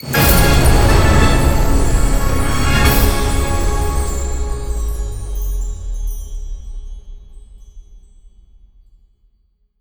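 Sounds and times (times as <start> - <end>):
super mega win end game jingle: 0.0 - 6.1.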